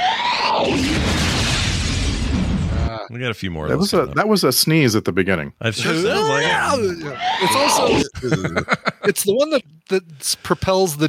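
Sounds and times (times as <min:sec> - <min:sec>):
fire sound effect in a film about firefighting: 0:00.6 - 0:02.9
speech: 0:03.2 - 0:11.0
laughter: 0:05.8 - 0:09.2.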